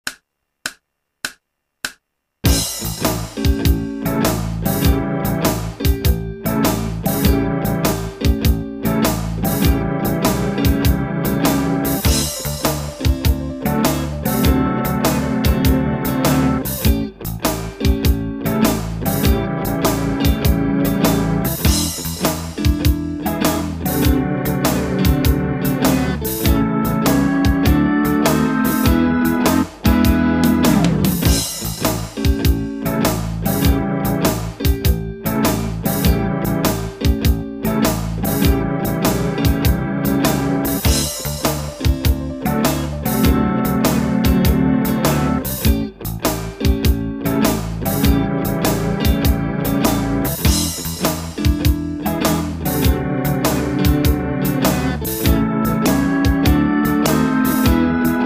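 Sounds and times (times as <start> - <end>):
blues etude backing track in A: 2.4 - 58.2.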